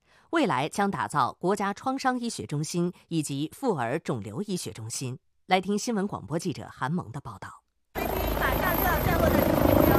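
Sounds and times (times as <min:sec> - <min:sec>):
speech: 0:00.3 - 0:07.6
rescue helicopter landing on a hospital helipad: 0:08.0 - 0:09.9.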